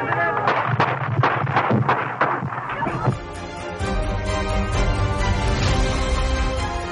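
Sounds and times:
sharp cracking gunshots: 0:00.0 - 0:03.1
music: 0:02.8 - 0:06.8.

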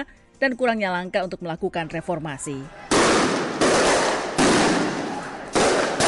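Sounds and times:
speech: 0:00.0 - 0:03.3
loud sharp bangs of firecrackers or gunfire at a street clash in Bangkok: 0:02.9 - 0:06.0.

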